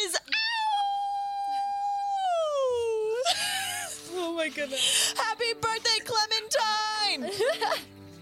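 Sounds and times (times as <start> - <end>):
person howling like a werewolf: 0.3 - 3.2
laughter: 3.2 - 4.9, 7.2 - 7.9
speech: 4.5 - 5.8.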